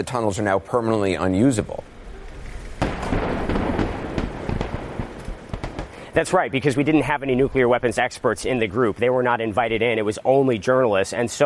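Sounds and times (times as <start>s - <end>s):
speech: 0.0s - 1.9s, 6.2s - 11.4s
heavy demolition blast at nuclear test site: 1.6s - 8.8s
sustained low rumble with scattered sharper cracks and pops: 1.8s - 8.6s.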